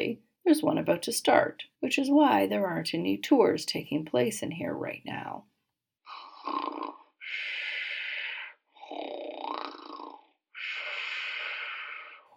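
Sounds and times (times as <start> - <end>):
speech: 0.0 - 5.5, 6.4 - 7.5
man snoring loudly in an auditorium: 6.0 - 12.3.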